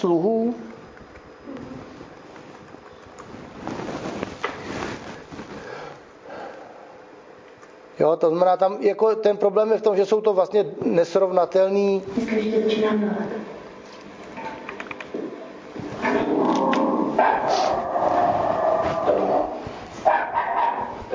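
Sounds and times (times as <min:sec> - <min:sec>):
speech: 0:00.0 - 0:00.7, 0:08.0 - 0:13.4
dog barking and growling at an unwelcome man: 0:16.0 - 0:21.0.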